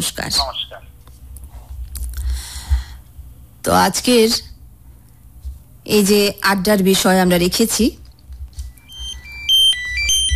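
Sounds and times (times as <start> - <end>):
speech: 0.0 - 0.9, 3.6 - 4.5, 5.9 - 8.0
phone ringtone of an incoming call with electronic beeps: 8.8 - 10.3.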